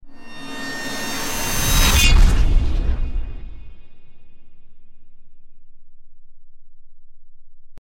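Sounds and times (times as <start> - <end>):
trailer sound effects: 0.0 - 4.9.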